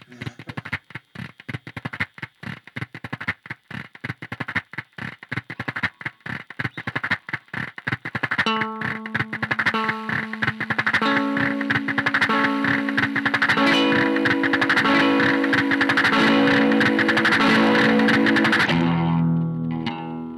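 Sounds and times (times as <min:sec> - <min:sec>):
heavily fuzzed electric guitar through a fuzz-delay pedal: 0:00.0 - 0:20.3
howling guitar feedback: 0:08.4 - 0:20.3.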